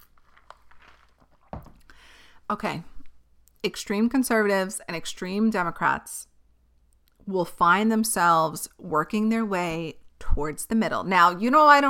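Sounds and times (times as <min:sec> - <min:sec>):
quiet handling noises: 0:00.0 - 0:01.9
speech: 0:02.5 - 0:02.9, 0:03.6 - 0:06.3, 0:07.3 - 0:11.8.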